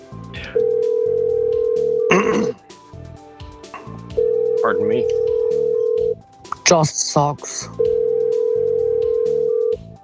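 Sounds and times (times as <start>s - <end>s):
telephone call ringing tone while waiting for someone to answer: 0.6s - 2.1s, 4.1s - 6.2s, 7.8s - 9.8s
speech: 4.8s - 5.2s, 6.7s - 7.8s.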